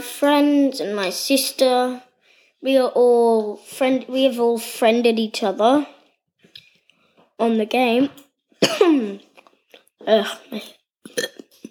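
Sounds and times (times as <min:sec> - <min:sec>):
speech: 0:00.0 - 0:06.0, 0:07.4 - 0:09.3, 0:10.0 - 0:11.3
person coughing from eating popcorn: 0:08.6 - 0:09.2
person burping from eating popcorn: 0:11.1 - 0:11.7.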